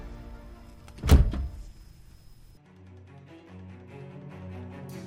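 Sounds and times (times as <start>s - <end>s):
house door slamming shut: 0.9s - 1.7s.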